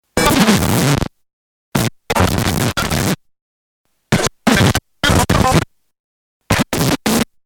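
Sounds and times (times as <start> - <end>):
turntable stylus jumping and scratching a vinyl record: 0.2 - 1.1, 1.8 - 3.2, 4.1 - 5.7, 6.5 - 7.3.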